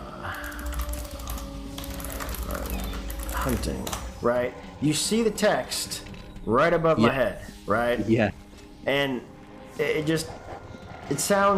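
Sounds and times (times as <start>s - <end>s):
soft typing on a computer keyboard: 0.3s - 4.0s
speech: 3.4s - 10.4s, 11.1s - 11.5s.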